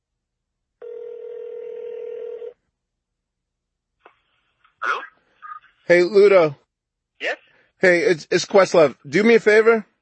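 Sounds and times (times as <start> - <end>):
telephone ringing tone from a call being placed: 0.8 - 2.6
speech: 5.9 - 6.6, 7.2 - 9.9.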